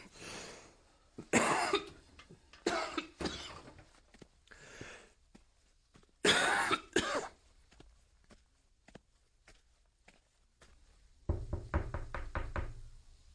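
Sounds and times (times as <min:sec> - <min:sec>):
cough-like burst: 0:01.3 - 0:02.0, 0:06.2 - 0:07.4
knocking on a door: 0:11.3 - 0:12.9.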